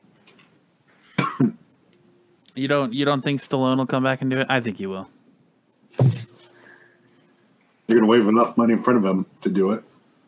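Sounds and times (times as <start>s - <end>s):
person coughing: 1.1s - 1.6s
speech: 1.4s - 1.6s, 2.6s - 5.2s, 7.9s - 9.9s.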